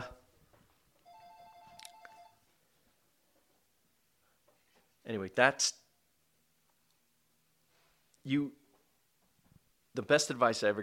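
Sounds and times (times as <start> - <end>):
house telephone ringing with electronic trill: 1.0 - 2.5
speech: 5.1 - 5.8, 8.2 - 8.6, 10.0 - 10.8.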